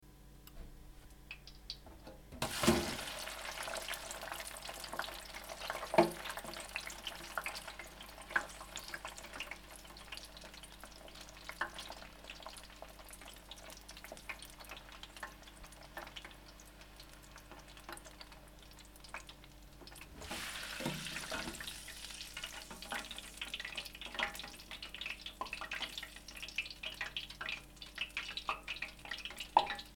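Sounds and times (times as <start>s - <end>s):
fries frying in oil: 2.4s - 29.9s.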